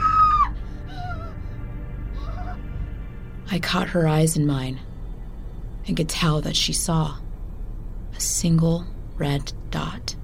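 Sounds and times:
woman screaming shrilly: 0.0s - 1.3s
faint wavering cries: 0.0s - 3.0s
steady low rumble: 0.0s - 10.2s
speech: 3.5s - 4.9s, 5.8s - 7.2s, 8.2s - 10.2s.

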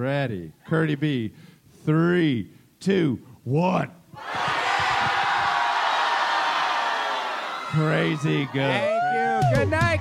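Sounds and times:
speech: 0.0s - 4.4s, 7.7s - 10.0s
large live crowd shouting a word in unison: 4.2s - 10.0s.

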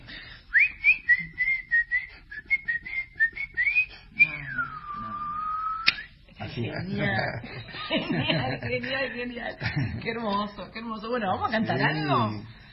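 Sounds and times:
person whistling a folk melody mimicking a parrot: 0.5s - 6.2s
speech: 6.6s - 12.6s
laughter: 6.9s - 10.0s.

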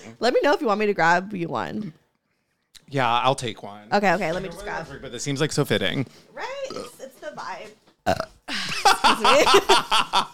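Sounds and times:
speech: 0.0s - 2.0s, 2.9s - 10.3s
rough croaky burp: 6.6s - 7.0s, 8.0s - 8.5s
laughter: 8.5s - 10.3s.

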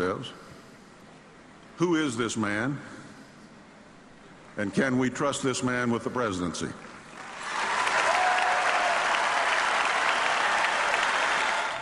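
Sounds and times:
speech: 0.0s - 0.4s, 1.8s - 3.0s, 4.6s - 6.9s
large convention crowd applauding: 6.9s - 11.8s
faint cheering: 7.4s - 11.8s.

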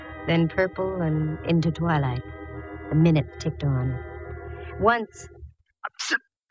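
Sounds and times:
speech: 0.2s - 4.1s, 4.8s - 5.4s, 6.1s - 6.5s
person sneezing: 5.9s - 6.2s.

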